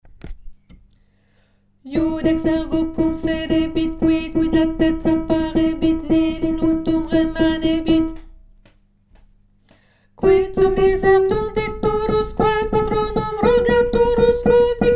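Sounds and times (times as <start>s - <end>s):
alto voice singing: 1.8s - 8.3s, 10.2s - 14.9s.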